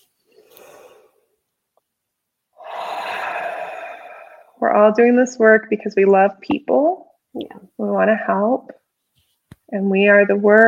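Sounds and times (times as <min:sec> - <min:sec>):
group breathing in: 0:00.3 - 0:01.2, 0:02.6 - 0:04.6
group breathing out: 0:02.6 - 0:04.6
speech: 0:04.6 - 0:08.8, 0:09.7 - 0:10.6.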